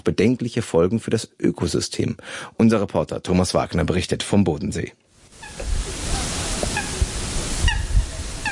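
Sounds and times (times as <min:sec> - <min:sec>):
speech: 0:00.0 - 0:05.0
small black water birds chirping softly: 0:05.4 - 0:08.5.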